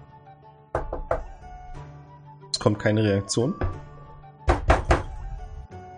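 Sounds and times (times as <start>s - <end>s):
knuckles knocking on a hard surface imitating a door knocker: 0.8s - 1.4s, 3.6s - 5.2s
speech: 2.6s - 3.7s
soft thud: 3.6s - 5.1s.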